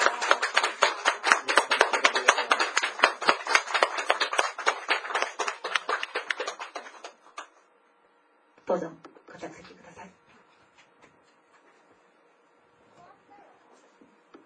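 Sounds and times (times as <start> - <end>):
church audience applauding: 0.0 - 7.5
speech: 8.7 - 10.2.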